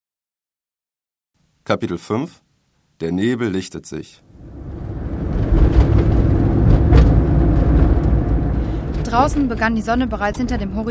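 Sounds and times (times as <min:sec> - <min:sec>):
speech: 0:01.7 - 0:02.4, 0:03.0 - 0:04.3, 0:09.1 - 0:10.9
car engine rumbling heard from inside the vehicle: 0:04.3 - 0:10.9.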